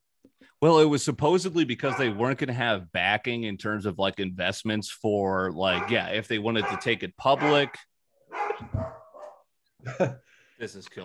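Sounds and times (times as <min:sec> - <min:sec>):
speech: 0:00.6 - 0:09.0, 0:09.8 - 0:11.0
dog barking and yipping: 0:01.8 - 0:02.2, 0:05.7 - 0:09.5.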